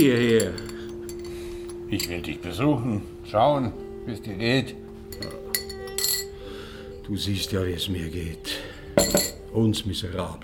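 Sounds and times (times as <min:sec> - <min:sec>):
speech: 0:00.0 - 0:00.7, 0:01.9 - 0:05.5, 0:07.1 - 0:10.4
spoon clinking against a glass stirring slimming powder into water: 0:00.0 - 0:02.5, 0:05.1 - 0:06.5, 0:09.0 - 0:09.5.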